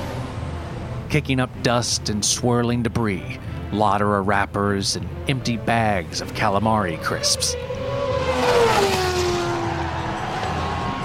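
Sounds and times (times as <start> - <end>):
speech: 1.1 - 7.8
race cars speeding on a street circuit shifting up through the gears: 7.0 - 11.0.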